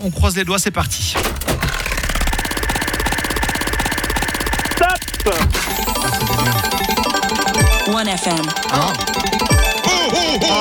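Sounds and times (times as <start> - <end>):
speech: 0.0 - 1.8, 7.9 - 9.5, 10.4 - 10.5
prize wheel spinning with pointer ticking over pegs: 1.5 - 10.5.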